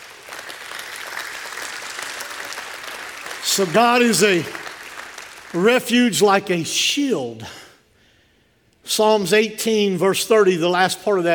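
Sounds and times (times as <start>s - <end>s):
audience clapping hands in praise: 0.0s - 5.9s
speech: 3.6s - 4.6s, 5.5s - 7.6s, 8.9s - 11.3s.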